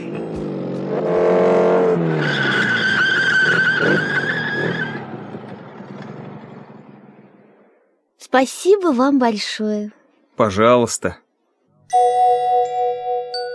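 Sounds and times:
motorcycle engine revving: 0.0 - 7.7
motorcycle tires screeching in a skid: 0.0 - 7.7
speech: 8.4 - 11.2, 11.9 - 12.3.

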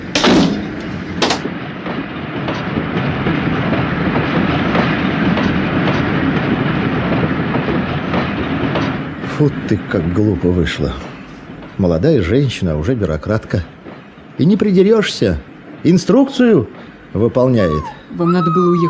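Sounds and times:
metallic clanks of a departing train: 0.0 - 1.6
train wheels clickety-clack on the track: 0.0 - 17.9
rail cars of a departing train rumbling: 0.0 - 18.8
speech: 9.4 - 11.2, 11.8 - 13.8, 14.4 - 18.8.

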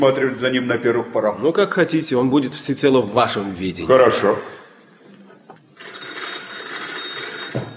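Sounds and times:
speech: 0.0 - 4.6
old-fashioned telephone bell ringing: 5.8 - 7.7.

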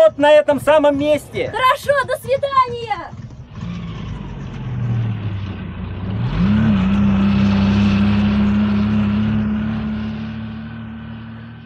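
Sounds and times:
speech: 0.1 - 3.2
car engine revving with wheels spinning in deep snow: 3.1 - 11.6.

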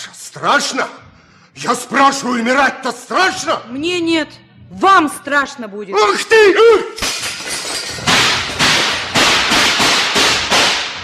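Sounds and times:
speech: 0.4 - 7.1
lantern smashed with a short blow: 7.0 - 11.0
sharp loud gunshots in a dark prison: 8.1 - 11.0.

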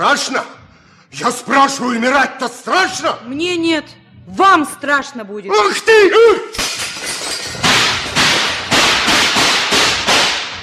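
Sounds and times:
speech: 0.0 - 6.6
lantern smashed with a noisy crash: 6.5 - 10.5
sharp loud gunshots in a dark prison: 7.6 - 10.6.

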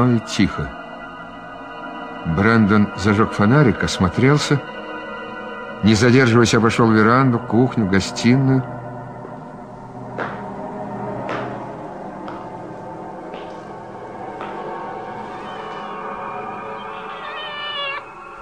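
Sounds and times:
speech: 0.0 - 0.8, 2.2 - 4.8, 5.8 - 8.8
cat shut in somewhere meowing and wailing: 16.6 - 18.2.

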